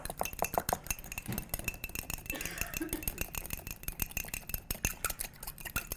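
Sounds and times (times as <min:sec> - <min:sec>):
fork whisking salad dressing with ground black pepper in a bowl: 0:00.0 - 0:05.9.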